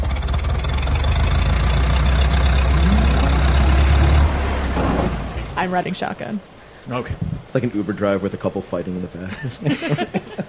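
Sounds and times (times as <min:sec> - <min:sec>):
jeep engine rumbling as the vehicle starts driving: 0:00.0 - 0:08.0
speech: 0:05.6 - 0:10.4
laughter: 0:09.2 - 0:10.4.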